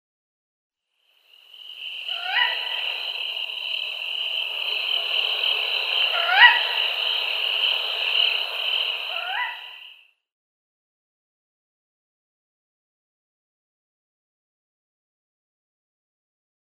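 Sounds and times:
female Tawny Owl mauritanica call: 1.6s - 9.9s.

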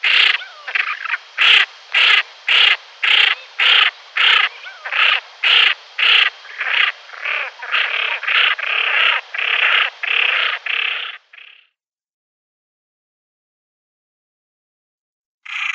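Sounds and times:
female common pochards giving rasping calls: 0.0s - 11.7s.

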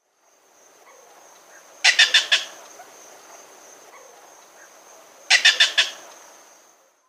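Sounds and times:
Little Bittern alarm call: 1.8s - 2.6s, 5.3s - 6.1s.

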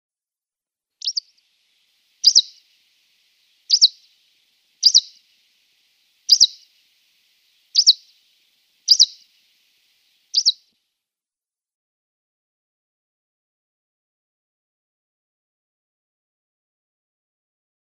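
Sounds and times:
Greenish Warbler calls: 1.0s - 1.4s, 2.2s - 2.8s, 3.6s - 5.4s, 6.2s - 6.9s, 7.6s - 10.6s.

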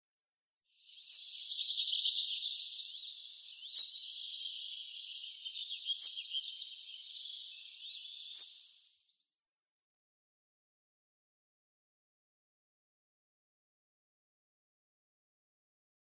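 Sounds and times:
rock bunting calls: 0.9s - 8.9s.

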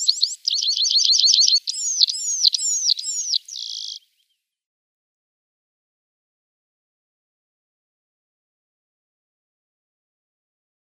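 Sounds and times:
Red-throated Pipit singing thin high downward-sliding whistles: 0.0s - 4.1s.

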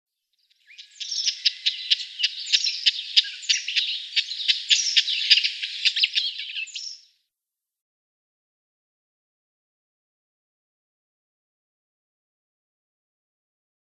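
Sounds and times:
Cyprus Wheatear calls: 0.5s - 7.1s.

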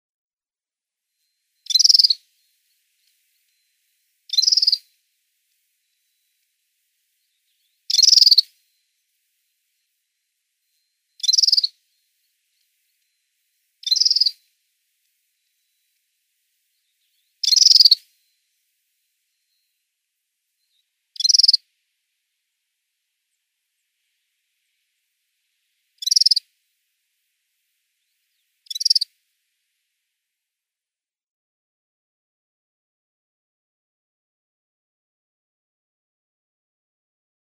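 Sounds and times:
Redfronted Serin calls: 1.2s - 19.9s, 20.6s - 21.6s, 26.0s - 26.5s, 27.9s - 29.1s.

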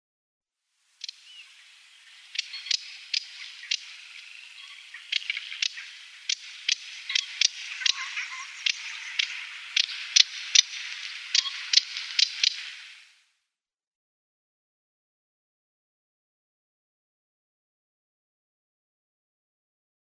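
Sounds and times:
Moustached Warbler calls: 1.0s - 13.1s.

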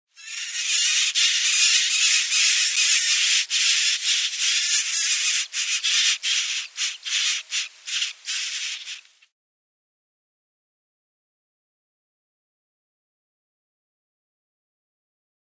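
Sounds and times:
reed warbler nestling: 0.2s - 9.2s.

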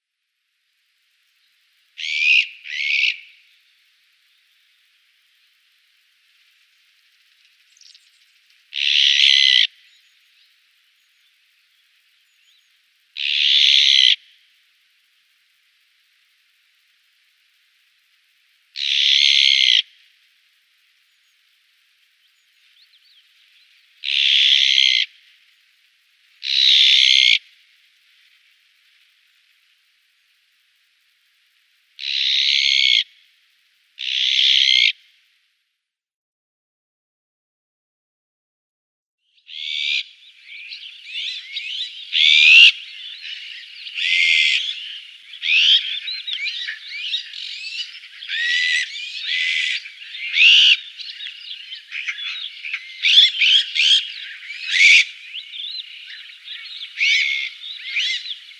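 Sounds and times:
Azure-winged Magpie calls: 2.0s - 3.4s, 8.7s - 9.9s, 13.2s - 14.3s, 18.8s - 20.0s, 24.0s - 25.2s, 26.4s - 27.4s, 32.0s - 33.2s, 34.0s - 35.0s, 39.4s - 58.5s.

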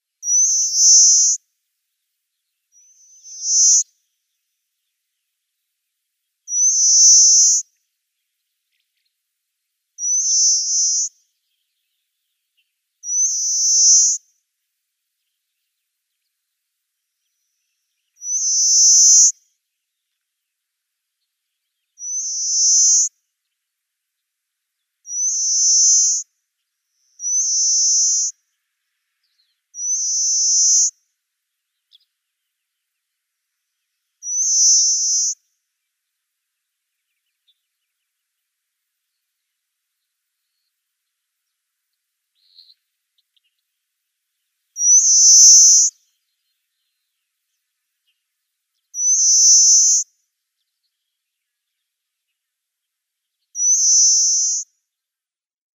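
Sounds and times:
Pale Rock Sparrow song: 0.0s - 55.2s.

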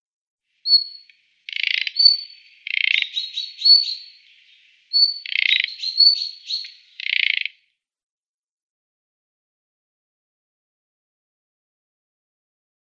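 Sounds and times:
thrush nightingale calling: 0.6s - 7.7s.

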